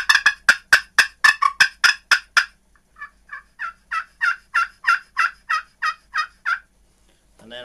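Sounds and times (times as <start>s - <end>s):
excited turkey yelps and cutts blown on a game call: 0.0s - 6.7s.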